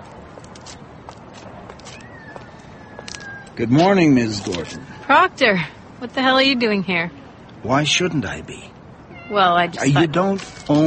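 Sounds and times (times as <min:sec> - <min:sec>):
soft scattered footsteps or clicks: 0:00.0 - 0:03.6
steady outdoor hiss: 0:00.0 - 0:10.8
stray cat meowing at a sanctuary for stray cats: 0:02.0 - 0:03.6, 0:07.8 - 0:08.5, 0:09.1 - 0:10.8
speech: 0:03.6 - 0:10.8.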